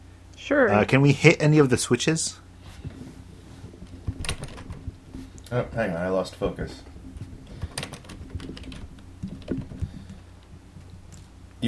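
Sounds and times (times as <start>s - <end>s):
speech: 0.5s - 3.0s, 5.5s - 6.9s
typing on a computer keyboard: 7.6s - 10.2s.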